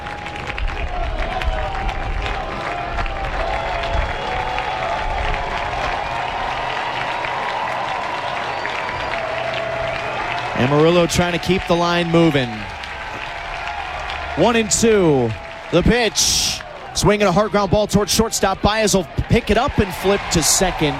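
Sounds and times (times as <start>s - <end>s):
large baseball crowd cheering and clapping: 0.0s - 20.9s
speech: 10.6s - 12.8s, 14.4s - 20.9s.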